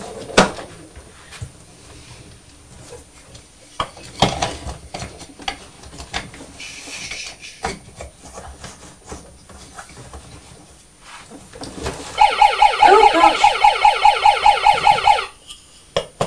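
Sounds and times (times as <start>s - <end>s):
toy police car siren set off by a train track: 12.2s - 15.4s.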